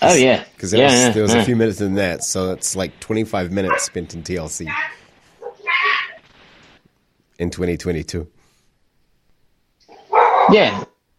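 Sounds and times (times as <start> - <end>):
speech: 0.0 - 5.0, 7.4 - 8.4, 10.5 - 10.9
dog barking: 3.7 - 4.0, 5.4 - 5.7, 9.9 - 10.8
dog yelping: 3.7 - 4.0, 4.7 - 6.2, 9.9 - 10.9.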